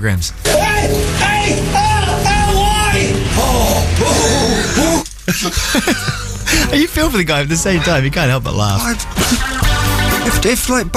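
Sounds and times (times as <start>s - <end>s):
speech: 0.0s - 1.9s, 5.3s - 9.7s, 10.3s - 10.9s
man's exaggerated comedy-style scream: 0.5s - 5.1s
man's strained yelps: 0.5s - 5.1s
laughter: 3.3s - 6.9s, 9.0s - 10.5s.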